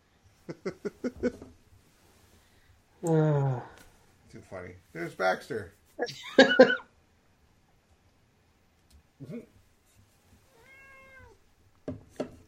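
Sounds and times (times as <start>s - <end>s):
speech: 0.5s - 1.4s, 3.0s - 3.3s, 4.5s - 6.8s
cat meowing: 10.5s - 11.4s.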